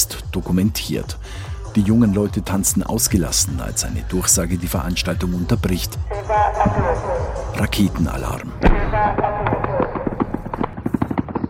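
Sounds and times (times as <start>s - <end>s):
voices and shouting: 0.0s - 10.4s
speech: 0.4s - 9.6s
rapid bursts of automatic gunfire: 8.6s - 11.4s.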